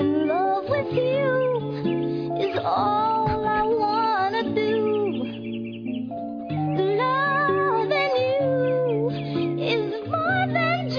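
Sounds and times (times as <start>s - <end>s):
birdsong chirps and twitters: 0.0s - 10.9s
soft sustained musical backdrop: 0.0s - 10.9s.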